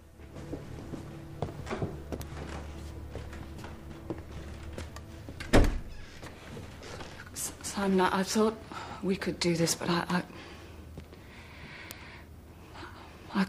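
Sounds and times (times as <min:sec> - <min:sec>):
steady low hum: 0:00.0 - 0:13.4
shuffling movements: 0:00.2 - 0:05.4, 0:06.2 - 0:08.4
kitchen door pushed shut with a solid thud: 0:05.4 - 0:06.0
speech: 0:07.8 - 0:10.3.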